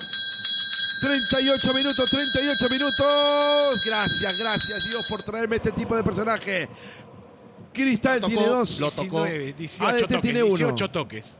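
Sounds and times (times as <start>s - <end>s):
bell ringing: 0.0s - 5.4s
speech: 1.0s - 7.1s, 7.8s - 11.3s.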